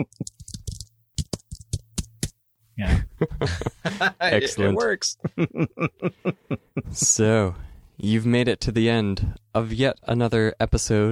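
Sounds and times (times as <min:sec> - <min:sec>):
speech: 0:00.0 - 0:00.4, 0:02.8 - 0:11.0
computer keyboard typing sound effect: 0:00.0 - 0:02.3
laughter: 0:02.9 - 0:07.0.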